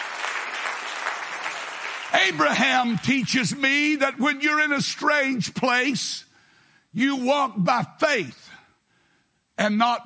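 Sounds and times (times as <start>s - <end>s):
audience clapping hands: 0.0s - 4.0s
speech: 2.1s - 6.3s, 6.9s - 8.4s, 9.6s - 10.0s.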